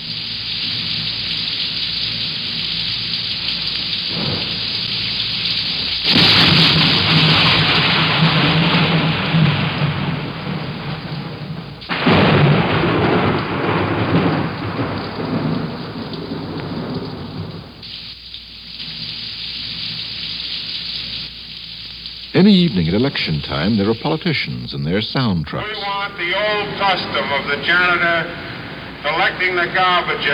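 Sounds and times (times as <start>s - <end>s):
heavy rain pouring: 0.0s - 30.3s
loud cracking thunder claps: 2.2s - 17.9s, 22.3s - 30.3s
speech: 22.5s - 30.3s.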